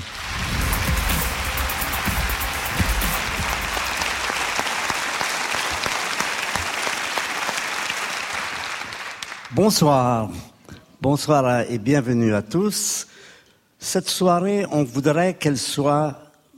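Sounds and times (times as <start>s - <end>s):
large audience applauding: 0.0s - 9.6s
speech: 9.6s - 13.1s, 13.8s - 16.2s.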